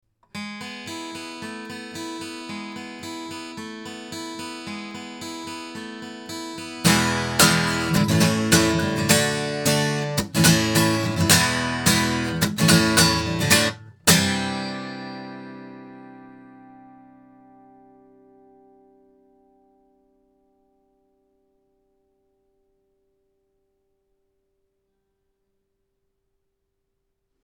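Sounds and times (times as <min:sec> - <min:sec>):
guitar playing into microphones: 0:00.3 - 0:21.8.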